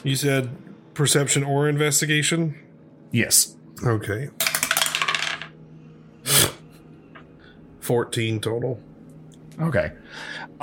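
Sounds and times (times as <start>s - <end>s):
speech: 0.0s - 4.4s, 7.9s - 8.9s, 9.6s - 10.6s
dice rattling across a hard tabletop: 4.4s - 5.6s.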